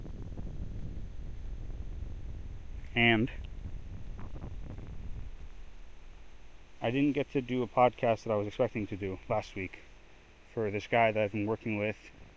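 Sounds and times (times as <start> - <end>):
strong wind buffeting the microphone: 0.0 - 6.4
speech: 3.0 - 3.5, 6.8 - 9.9, 10.6 - 12.2.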